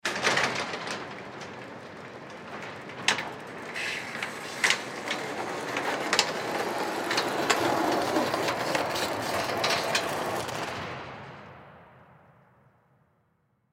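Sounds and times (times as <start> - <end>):
go kart garage door closing: 0.1 - 10.8.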